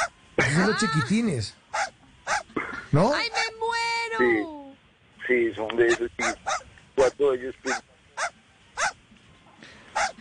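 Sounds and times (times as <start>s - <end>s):
speech: 0.6s - 1.6s, 2.9s - 3.6s, 4.2s - 4.6s, 5.3s - 7.9s
small dog yapping: 1.7s - 2.5s, 5.9s - 6.7s, 7.7s - 9.0s, 10.0s - 10.1s.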